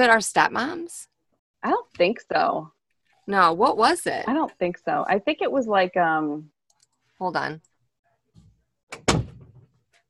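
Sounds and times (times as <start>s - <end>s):
speech: 0.0s - 6.5s, 7.2s - 7.7s
door slamming shut: 8.9s - 9.7s.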